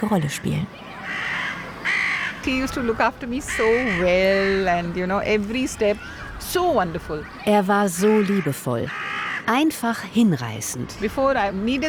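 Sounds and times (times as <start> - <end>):
speech: 0.0 - 1.1, 2.4 - 11.8
crows cawing: 0.4 - 4.8, 5.9 - 6.6, 8.0 - 9.5.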